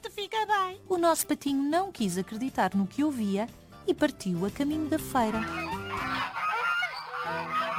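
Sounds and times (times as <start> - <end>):
speech: 0.3 - 5.7
group of old noisy geese honking: 4.9 - 7.7.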